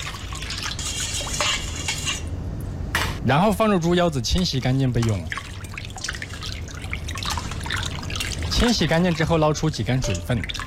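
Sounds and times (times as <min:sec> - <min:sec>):
faint liquid sloshing: 0:00.0 - 0:02.2, 0:04.6 - 0:10.6
stirring salt, cooking wine, soy sauce and water in a bowl: 0:00.0 - 0:02.3, 0:04.9 - 0:10.6
speech: 0:03.2 - 0:05.4, 0:08.6 - 0:10.6.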